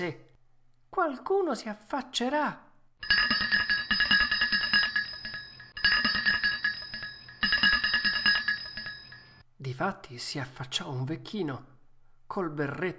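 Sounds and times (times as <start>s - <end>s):
speech: 0.0s - 0.2s, 0.9s - 3.2s, 9.6s - 11.7s, 12.3s - 12.9s
house doorbell rung continuously: 3.0s - 9.4s.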